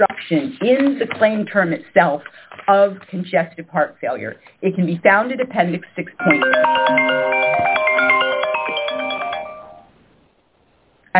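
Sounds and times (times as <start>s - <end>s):
speech: 0.0s - 7.9s
phone ringing with a bright melodic electronic ringtone: 6.2s - 9.9s.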